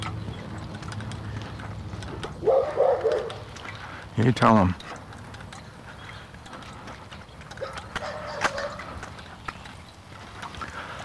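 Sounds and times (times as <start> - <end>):
dog barking: 2.4 - 3.5, 7.6 - 9.0
speech: 4.2 - 5.0.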